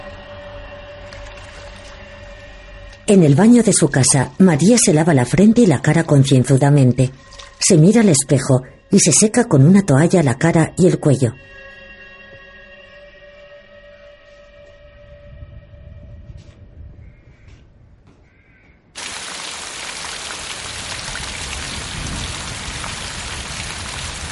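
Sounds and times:
faint tonal sounds: 0.0s - 17.0s
speech: 3.1s - 11.7s
heavy rain falling outside a house: 19.0s - 24.3s.

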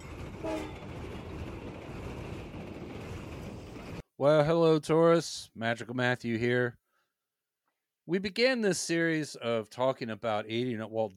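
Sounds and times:
low rumble and clatter of a rolling train: 0.0s - 4.0s
short bright train horn toot: 0.4s - 0.8s
speech: 4.2s - 6.8s, 8.1s - 11.1s.

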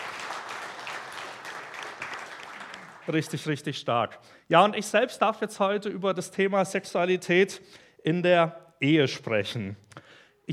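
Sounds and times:
audience applause: 0.0s - 3.5s
speech: 3.1s - 9.8s.

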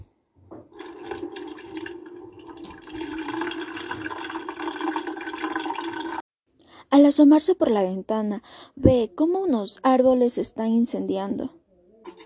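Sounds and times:
water running into a glass in a kitchen: 0.7s - 6.2s
speech: 6.9s - 11.6s.

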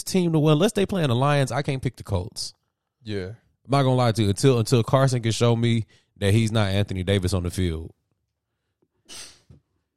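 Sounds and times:
speech: 0.0s - 8.0s, 9.1s - 9.3s
sharp sneeze: 9.1s - 9.5s.

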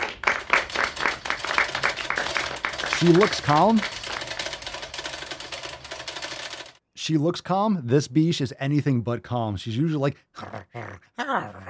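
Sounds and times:
soft polite golf clap: 0.0s - 3.9s
speech: 3.0s - 4.0s, 7.1s - 11.6s.

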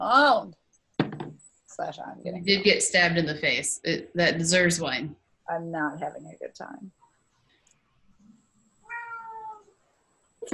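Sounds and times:
speech: 1.8s - 7.0s
cat meowing: 8.9s - 9.7s.

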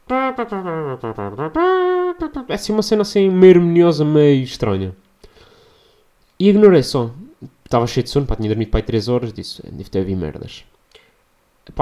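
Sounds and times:
voice imitating horns blaring: 0.0s - 2.8s
speech: 0.1s - 5.0s, 6.4s - 10.8s.

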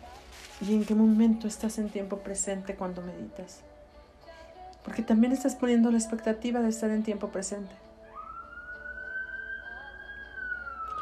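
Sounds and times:
speech: 0.6s - 3.7s, 5.0s - 7.9s
police patrol car siren wailing: 8.1s - 11.0s.

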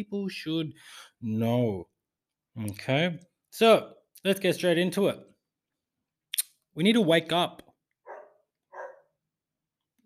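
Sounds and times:
speech: 0.0s - 1.9s, 2.6s - 5.3s, 6.8s - 7.6s
neighbor's dog barking: 8.0s - 9.2s.

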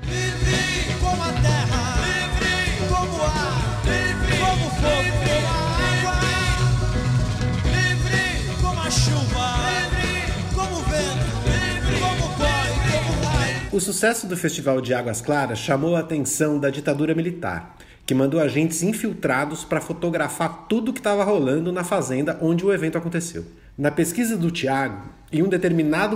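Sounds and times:
rock song with full band, bass and drums: 0.0s - 13.8s
speech: 13.8s - 26.1s.

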